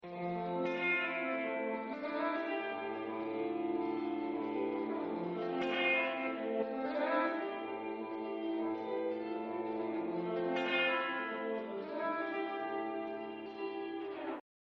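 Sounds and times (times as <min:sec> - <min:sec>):
clean electric guitar through a Hotrail pickup: 0:00.0 - 0:14.4.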